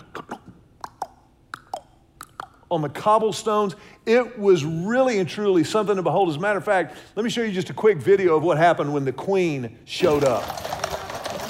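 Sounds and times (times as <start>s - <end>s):
tongue clicks imitating carriage horse hooves on cobblestones: 0.2s - 2.7s
speech: 2.7s - 10.7s.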